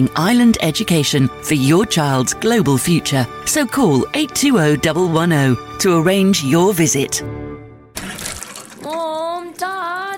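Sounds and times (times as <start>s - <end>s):
speech: 0.0s - 7.5s
water running from a tap: 8.0s - 10.1s.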